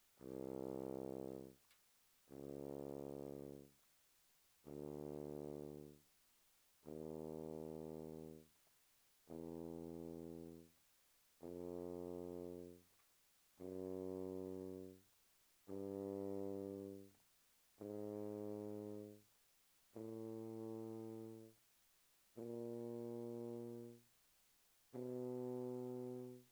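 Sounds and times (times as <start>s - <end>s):
tuba notes played mezzo forte from C2 to B2: 0.0s - 1.7s, 2.3s - 3.8s, 4.6s - 6.1s, 6.8s - 8.5s, 9.2s - 10.8s, 11.4s - 12.9s, 13.6s - 17.2s, 17.8s - 19.3s, 19.9s - 21.6s, 22.3s - 24.1s, 24.9s - 26.5s.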